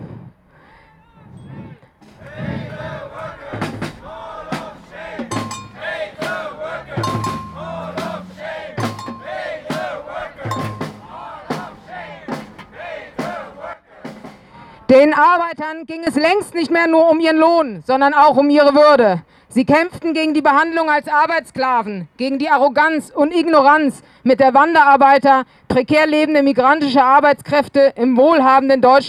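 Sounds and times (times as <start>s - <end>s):
large protest crowd chanting slogans at a shopping centre: 0.7s - 14.9s
sharp rhythmic beats or claps: 2.0s - 14.3s
speech: 15.0s - 29.0s.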